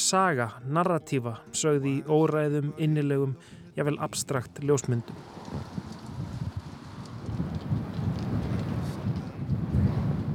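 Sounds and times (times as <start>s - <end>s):
speech: 0.0s - 5.8s
wind blowing against a window: 5.0s - 10.3s.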